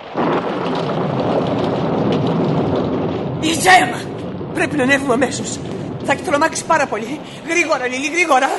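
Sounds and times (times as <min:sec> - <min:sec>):
thunder rumbling: 0:00.0 - 0:08.5
heavy rain hiss: 0:03.3 - 0:08.5
speech: 0:03.6 - 0:08.5.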